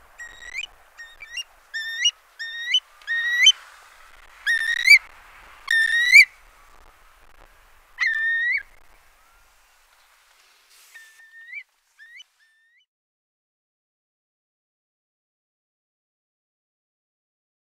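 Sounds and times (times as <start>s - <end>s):
Eurasian curlew whistled calls: 0.0s - 12.8s.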